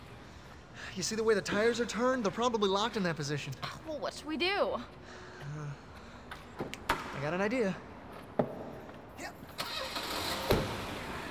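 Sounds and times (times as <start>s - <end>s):
speech: 1.0s - 5.9s, 7.2s - 7.9s
car engine cranking and settling into a steady rumble: 9.6s - 11.2s.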